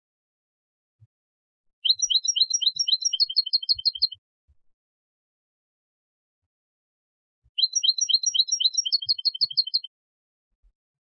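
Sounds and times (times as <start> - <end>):
European goldfinch Carduelis carduelis giving tinkling chirping notes: 1.8 - 4.2, 7.6 - 9.9.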